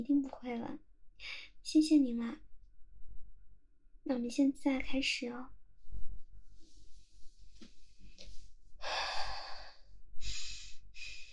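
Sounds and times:
speech: 0.0s - 2.5s, 4.0s - 5.6s
deep heavy breathing of a person short of breath: 8.2s - 11.3s.

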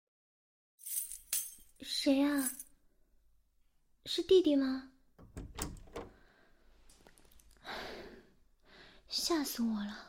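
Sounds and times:
speech: 1.8s - 2.6s, 4.1s - 5.4s, 9.1s - 10.0s
keys rattling and scraping at a door lock: 5.2s - 6.2s.

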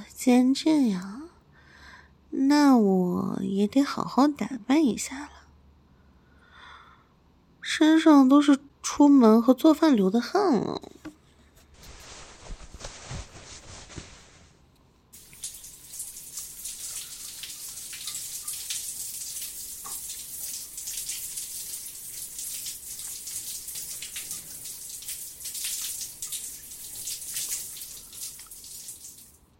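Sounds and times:
speech: 0.2s - 1.2s, 2.5s - 5.4s, 7.8s - 11.0s
warm water running from a tap while someone bathes: 15.2s - 29.4s.

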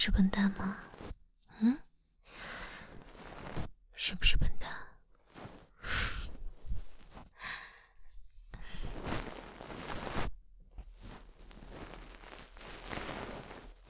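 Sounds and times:
speech: 0.0s - 0.9s, 1.6s - 1.8s, 4.0s - 4.8s
person breathing heavily while lying in bed: 1.6s - 3.0s, 5.8s - 9.0s
person turning over in bed: 2.8s - 3.7s, 5.3s - 7.4s, 8.6s - 13.8s.

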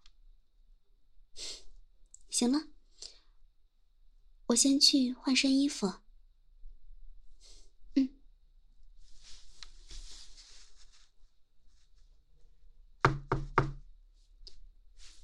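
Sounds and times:
speech: 2.4s - 2.7s, 4.5s - 6.0s
soft rustling: 8.8s - 12.8s, 14.0s - 15.2s
firm knocks on a door: 13.0s - 13.9s.

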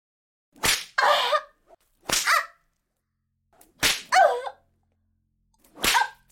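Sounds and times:
whip lashes striking a person's buttocks: 0.6s - 1.0s, 2.0s - 2.5s, 3.6s - 4.2s, 5.6s - 6.2s.

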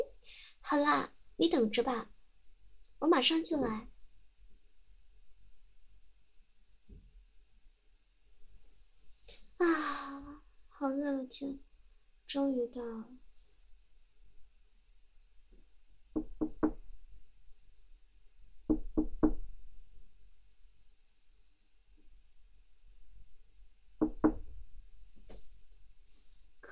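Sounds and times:
speech: 0.6s - 2.2s, 3.0s - 3.9s, 9.6s - 11.6s, 12.3s - 13.2s
knocking on a door: 16.2s - 16.8s, 18.7s - 19.5s, 24.0s - 24.4s.

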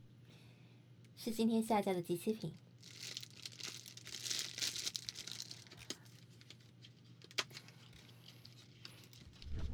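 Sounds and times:
speech: 1.2s - 2.6s
plastic or foil wrapper of a box of chocolates crinkling: 2.8s - 9.4s
low hum: 9.3s - 9.7s.

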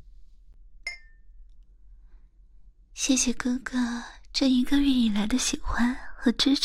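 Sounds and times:
glasses clinking in a toast: 0.9s - 1.3s
speech: 3.0s - 6.6s.

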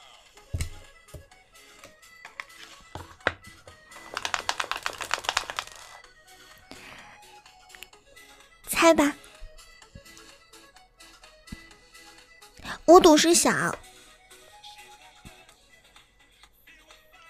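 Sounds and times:
dice rattling in a shaker cup: 3.9s - 6.0s
speech: 8.8s - 9.2s, 12.9s - 13.9s.

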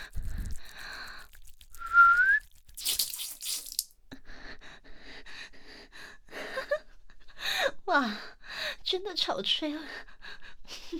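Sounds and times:
hissy splashing noise: 0.0s - 3.9s
soft breathy whistle by the ear: 1.7s - 2.5s
speech: 7.9s - 8.3s, 8.9s - 10.1s.

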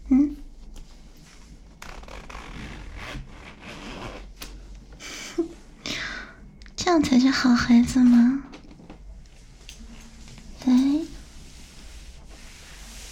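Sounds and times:
soft rustling of fabric: 0.4s - 4.7s, 7.7s - 13.0s
clothing zipper being unzipped: 1.8s - 4.4s
speech: 7.0s - 8.5s.

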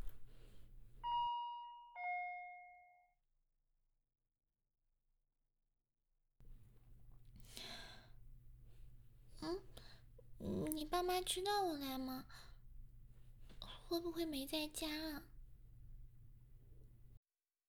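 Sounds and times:
doorbell two-note ding-dong chime: 1.0s - 3.2s
speech: 11.0s - 12.5s, 13.9s - 15.3s.

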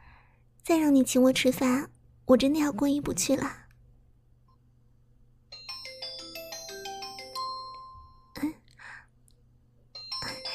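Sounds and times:
speech: 0.7s - 3.6s
phone ringing with a bright electronic melody: 5.5s - 8.4s, 10.0s - 10.5s.

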